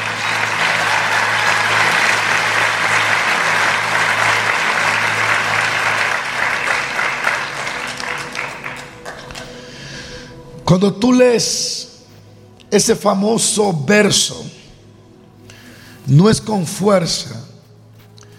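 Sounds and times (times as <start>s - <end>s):
large audience clapping steadily and slowly: 0.0s - 9.9s
speech: 10.7s - 11.8s, 12.7s - 14.6s, 16.1s - 17.5s.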